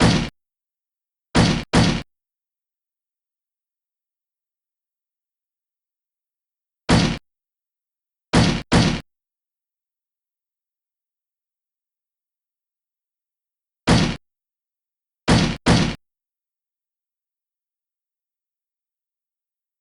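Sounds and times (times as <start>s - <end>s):
slam: 0.0s - 0.3s, 1.4s - 2.0s, 6.9s - 7.2s, 8.4s - 9.0s, 13.9s - 14.2s, 15.3s - 16.0s.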